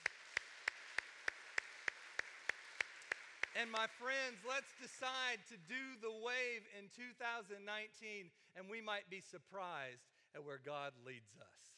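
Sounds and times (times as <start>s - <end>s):
church audience clapping in a steady rhythm: 0.0s - 6.6s
speech: 3.6s - 11.7s.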